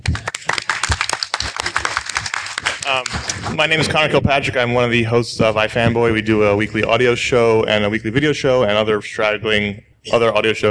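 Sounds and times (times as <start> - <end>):
small group of people clapping their hands: 0.0 - 3.8
speech: 2.9 - 10.7.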